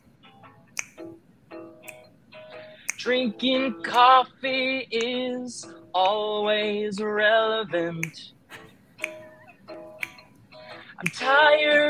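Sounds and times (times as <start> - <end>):
finger snapping to accompany singing: 0.7 - 1.2, 1.8 - 3.2, 3.9 - 4.1, 5.0 - 5.2, 6.0 - 6.2, 8.0 - 11.3
speech: 3.0 - 8.4, 11.0 - 11.8.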